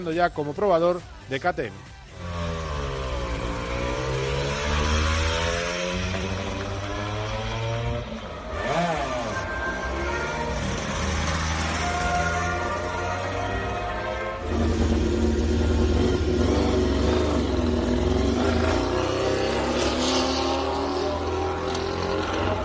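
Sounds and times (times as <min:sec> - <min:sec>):
speech: 0:00.0 - 0:01.9
Honda MotoGP racing motorcycle engines revving and screaming: 0:02.0 - 0:22.6.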